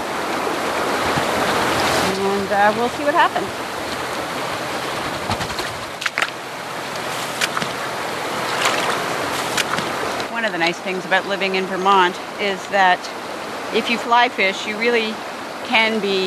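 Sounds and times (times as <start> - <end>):
feet stepping into river current: 0.0 - 10.4
river water rushing: 0.0 - 16.2
speech: 2.5 - 3.7, 10.5 - 16.2.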